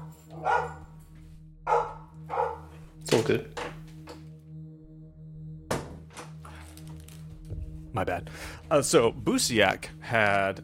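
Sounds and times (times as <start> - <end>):
dog barking: 0.0 - 1.0, 1.7 - 2.7
speech: 3.1 - 3.6, 7.9 - 10.6.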